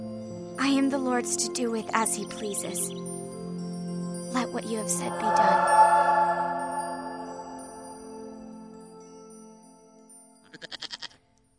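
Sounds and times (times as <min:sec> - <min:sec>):
speech: 0:00.7 - 0:03.1, 0:04.4 - 0:06.1
goat bleating: 0:10.5 - 0:11.2.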